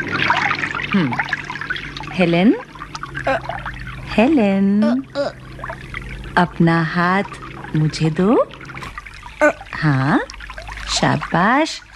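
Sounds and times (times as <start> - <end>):
water running from a tap: 0.0 - 11.9
speech: 1.0 - 1.4, 2.2 - 5.4, 6.4 - 8.6, 9.4 - 10.2, 11.0 - 11.9.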